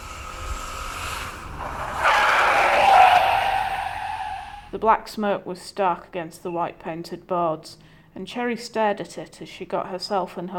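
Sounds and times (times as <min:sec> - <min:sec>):
car tires squealing while skidding to a stop: 0:00.0 - 0:04.8
car engine rumbling: 0:00.0 - 0:05.0
speech: 0:04.8 - 0:10.5.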